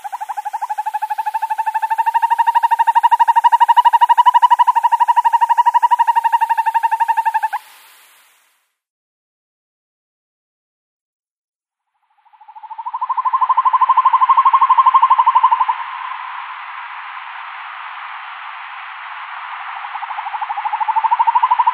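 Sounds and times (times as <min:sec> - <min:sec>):
male northern hawk-owl display call trill: 0:00.0 - 0:07.6, 0:12.2 - 0:16.2, 0:20.0 - 0:21.7.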